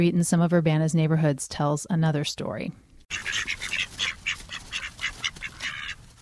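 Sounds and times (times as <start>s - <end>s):
speech: 0.0s - 3.8s
small flock of backyard bantam ducks quacking in Urbana: 3.1s - 6.2s.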